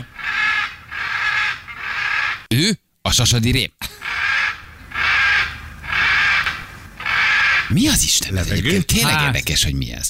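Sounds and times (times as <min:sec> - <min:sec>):
bird with harsh crow-like caws: 0:00.0 - 0:02.5, 0:03.9 - 0:07.8
speech: 0:02.6 - 0:04.0, 0:07.7 - 0:10.0.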